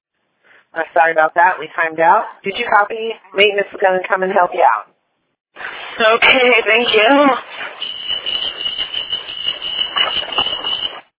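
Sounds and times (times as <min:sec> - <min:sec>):
speech: 0:00.7 - 0:04.9, 0:06.0 - 0:07.9
bus seat alarm shrill electronic tone: 0:06.7 - 0:11.1.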